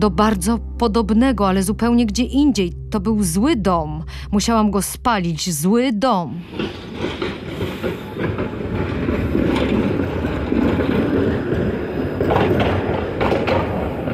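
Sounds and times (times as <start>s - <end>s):
speech: 0.0s - 7.4s
tram rolling along rails: 6.4s - 14.1s.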